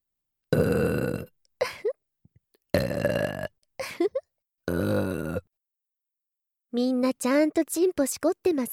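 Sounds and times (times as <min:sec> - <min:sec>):
loud deep throaty burps: 0:00.5 - 0:01.4, 0:02.7 - 0:03.6, 0:04.7 - 0:05.5
speech: 0:04.7 - 0:05.2, 0:06.8 - 0:08.7.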